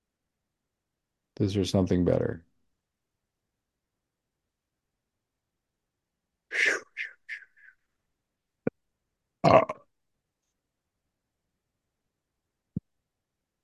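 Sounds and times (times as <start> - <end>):
speech: 1.4 - 2.5
person belching: 9.4 - 9.9.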